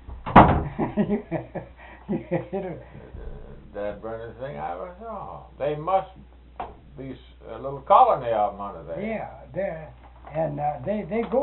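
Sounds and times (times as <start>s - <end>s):
door shutting with a thud: 0.0s - 0.9s
people talking and chuckling: 0.7s - 4.1s
speech: 1.0s - 11.4s.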